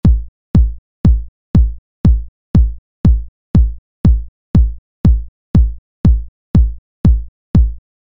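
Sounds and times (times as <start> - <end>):
dry 909 drum machine: 0.0 - 7.8.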